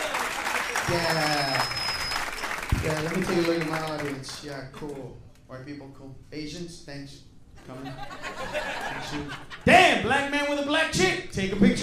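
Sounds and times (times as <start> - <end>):
stand-up comedy audience applause: 0.0 - 4.5
speech: 0.9 - 1.8, 2.8 - 11.8
laughter: 7.6 - 9.9.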